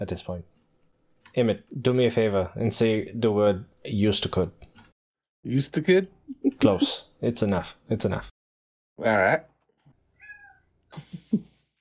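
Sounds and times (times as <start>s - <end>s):
speech: 0.0s - 0.5s, 1.3s - 4.7s, 5.4s - 8.4s, 9.0s - 9.5s, 10.9s - 11.5s
cat meowing: 10.2s - 10.7s.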